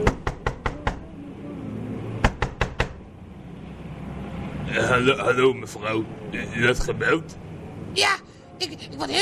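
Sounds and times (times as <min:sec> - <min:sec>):
sharp raps knocking on a window: 0:00.0 - 0:01.0, 0:02.2 - 0:03.0
speech: 0:04.7 - 0:09.2.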